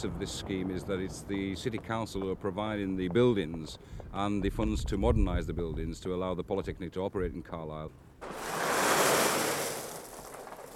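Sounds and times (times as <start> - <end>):
speech: 0.0 - 8.4
concrete being poured for foundations: 8.2 - 10.7.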